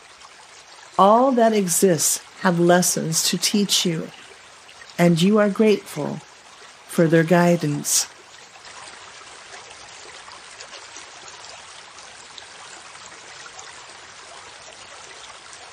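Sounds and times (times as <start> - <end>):
flowing river rushing and babbling: 0.0 - 15.7
speech: 1.0 - 4.2, 5.0 - 6.3, 6.9 - 8.2.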